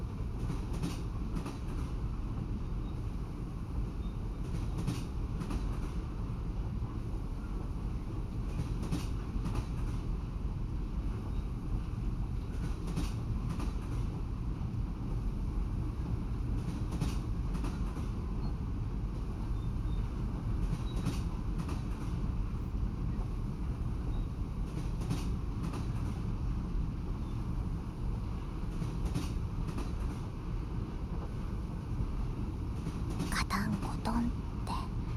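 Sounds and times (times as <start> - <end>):
train running on rails: 0.0 - 35.1
paired clicks from the rail joints: 0.1 - 3.2, 3.9 - 10.2, 11.0 - 14.8, 16.5 - 18.6, 19.2 - 30.4.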